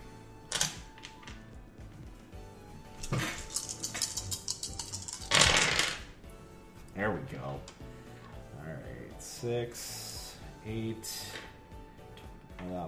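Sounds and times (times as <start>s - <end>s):
speech: 3.1s - 3.4s, 7.0s - 7.9s, 9.4s - 10.0s, 10.6s - 11.4s, 12.6s - 12.8s
dice rolling across a tabletop for an acrobatics check: 3.1s - 6.1s.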